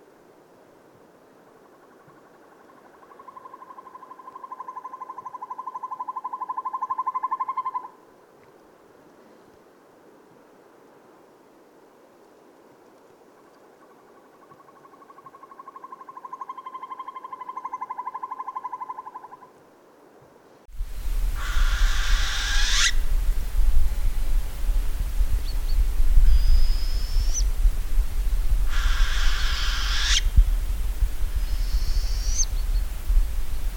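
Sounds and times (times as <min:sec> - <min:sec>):
Northern Hawk Owl giving trilled calls: 0:01.8 - 0:08.0, 0:14.4 - 0:19.5, 0:21.4 - 0:23.1, 0:26.2 - 0:27.5, 0:28.7 - 0:30.4, 0:31.4 - 0:32.8
loud burst of broadband noise: 0:20.7 - 0:33.7.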